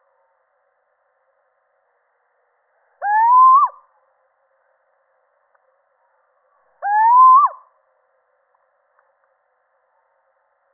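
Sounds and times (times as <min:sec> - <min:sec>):
male Little owl drawn-out rising hoot: 0:03.0 - 0:03.8, 0:06.8 - 0:07.7.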